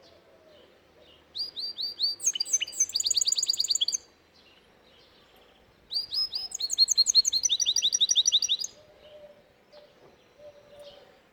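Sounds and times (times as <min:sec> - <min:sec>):
canary singing: 0:01.4 - 0:04.1, 0:05.9 - 0:08.8.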